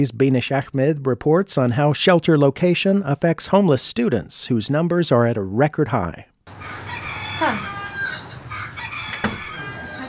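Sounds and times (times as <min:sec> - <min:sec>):
speech: 0:00.0 - 0:06.8, 0:07.4 - 0:07.7
rooster crow door alarm in a homeless shelter: 0:06.6 - 0:10.0.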